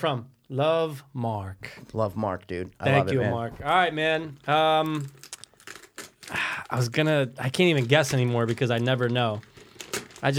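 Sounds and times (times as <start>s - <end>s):
speech: 0.0s - 5.2s, 6.3s - 9.5s
gift wrapping paper crinkling and tearing as a present is opened: 3.7s - 10.3s.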